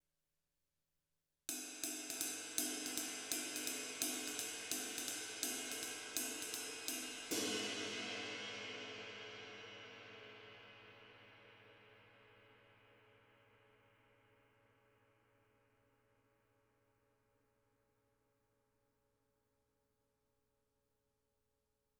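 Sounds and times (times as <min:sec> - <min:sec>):
22-inch jazz ride cymbal: 0:01.5 - 0:11.8.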